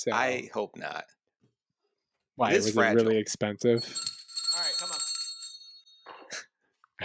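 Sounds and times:
speech: 0:00.0 - 0:01.2, 0:02.4 - 0:04.9
loud bright bell ringing: 0:03.8 - 0:06.1.

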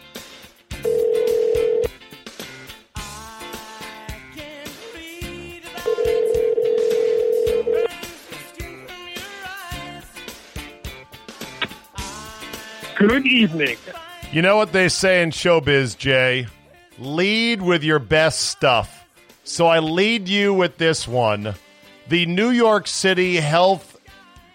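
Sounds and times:
busy musical background: 0:00.0 - 0:24.5
phone call ringback tones: 0:00.8 - 0:01.9, 0:05.9 - 0:08.0
speech: 0:13.0 - 0:23.9.

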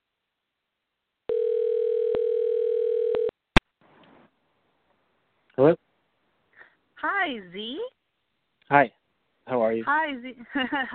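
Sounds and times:
telephone dial tone: 0:01.3 - 0:03.3
speech: 0:07.3 - 0:08.0, 0:08.7 - 0:10.9.

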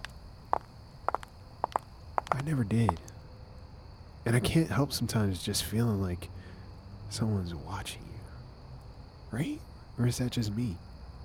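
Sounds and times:
soft footsteps walking across an empty lot: 0:00.0 - 0:03.1
faint insect-like drone: 0:00.0 - 0:11.2
steady hiss: 0:00.0 - 0:11.2
speech: 0:02.4 - 0:03.1, 0:04.2 - 0:06.4, 0:07.1 - 0:08.1, 0:09.3 - 0:10.9.

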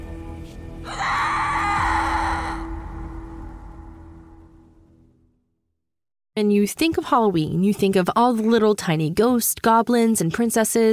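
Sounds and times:
shrill scream at a house in Napa Valley on Halloween night: 0:00.8 - 0:04.0
speech: 0:06.4 - 0:10.9.

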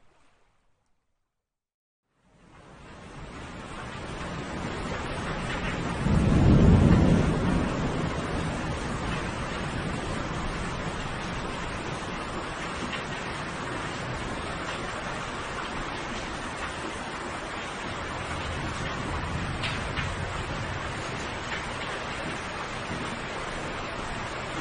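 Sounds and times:
thunderstorm rain: 0:02.1 - 0:24.5
deep roll of thunder: 0:04.0 - 0:14.7, 0:17.7 - 0:24.5.

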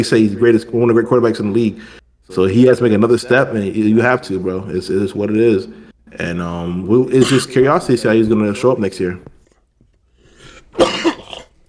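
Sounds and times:
speech: 0:00.0 - 0:09.3, 0:10.8 - 0:11.1
person coughing: 0:07.1 - 0:07.7, 0:10.7 - 0:11.6
raspy throat clearing intake: 0:07.1 - 0:07.7, 0:09.3 - 0:11.6.

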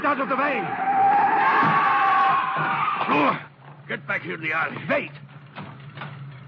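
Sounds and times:
car tires skidding and screeching: 0:00.0 - 0:03.5
speech: 0:00.1 - 0:00.9, 0:02.6 - 0:05.7.

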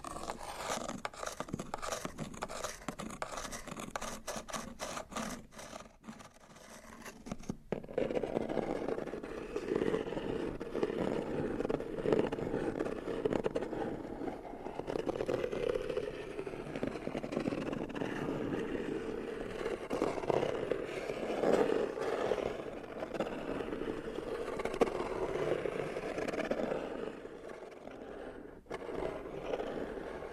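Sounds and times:
cardboard boxes scratched and rubbed: 0:00.0 - 0:30.3.

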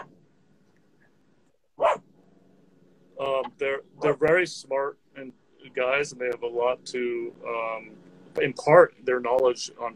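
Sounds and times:
low steady hum: 0:00.0 - 0:09.9
dog barking: 0:01.8 - 0:02.1
speech: 0:03.6 - 0:09.9.

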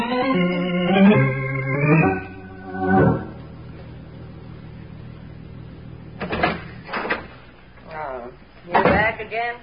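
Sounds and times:
low steady hum: 0:00.1 - 0:09.6
door creaking open with a whining hinge: 0:06.2 - 0:07.4.

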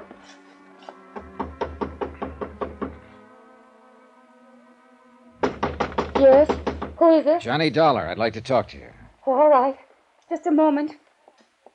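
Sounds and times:
knocking on a wooden apartment door: 0:01.1 - 0:03.1, 0:05.4 - 0:07.1
speech: 0:06.2 - 0:11.0.

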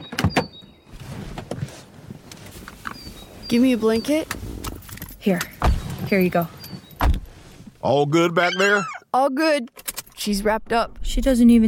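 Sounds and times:
speech: 0:03.5 - 0:04.4, 0:05.2 - 0:05.5, 0:06.1 - 0:06.6, 0:07.8 - 0:11.6
car door closing: 0:07.0 - 0:07.4.

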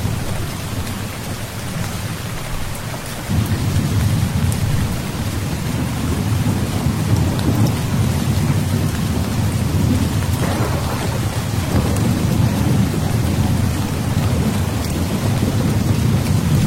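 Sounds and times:
heavy rain pouring in a forest at night: 0:00.0 - 0:16.6
deep thunder rumble: 0:03.3 - 0:16.6.

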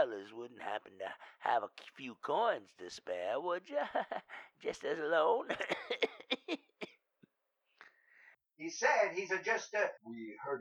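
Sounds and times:
speech: 0:00.0 - 0:06.7, 0:08.6 - 0:10.5
laughter: 0:03.6 - 0:06.8
man coughing: 0:05.5 - 0:07.0.

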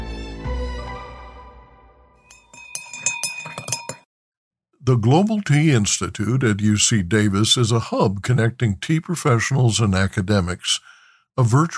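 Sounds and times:
glasses clinking in a toast: 0:02.3 - 0:04.0
resonant ringing tone: 0:02.3 - 0:04.0
speech: 0:04.8 - 0:11.7.

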